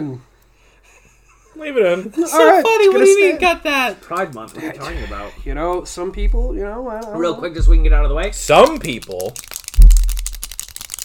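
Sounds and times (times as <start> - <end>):
speech: 0.0 - 0.3, 1.6 - 9.6
clicky pens being clicked: 8.6 - 11.0.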